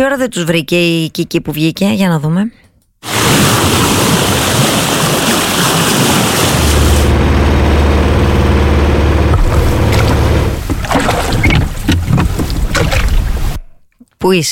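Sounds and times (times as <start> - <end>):
speech: 0.0 - 3.4, 14.2 - 14.5
steady rushing water of a boat moving across the sea: 3.0 - 8.1, 9.2 - 13.6
sea waves splashing: 3.0 - 13.6
low droning boat engine hum: 5.2 - 13.6.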